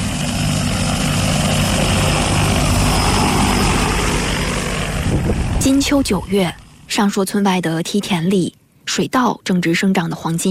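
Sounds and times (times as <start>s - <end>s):
crop-spraying drone propellers whirring: 0.0s - 7.0s
speech: 5.8s - 10.4s.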